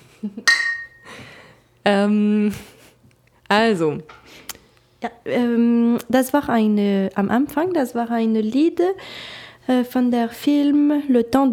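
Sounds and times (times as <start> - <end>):
speech: 0.2 - 0.6, 1.8 - 2.7, 3.5 - 11.5
glasses clinking in a toast: 0.5 - 1.1.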